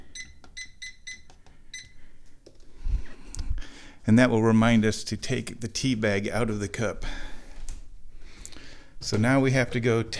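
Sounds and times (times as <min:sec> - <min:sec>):
microwave keypad beeping as timer is set: 0:00.0 - 0:02.0
speech: 0:04.0 - 0:07.2, 0:09.0 - 0:10.1.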